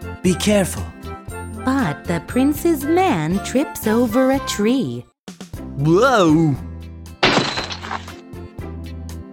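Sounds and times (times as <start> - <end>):
speech: 0.2 - 1.0, 1.6 - 5.1, 5.8 - 6.7
glass box falling and breaking: 7.2 - 8.2.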